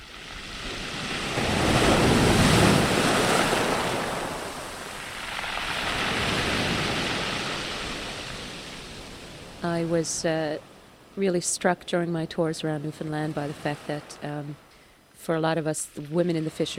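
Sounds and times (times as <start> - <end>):
stormy rough sea waves crashing against the shore: 0.0 - 11.1, 12.7 - 14.7
speech: 9.9 - 14.6, 15.2 - 16.7.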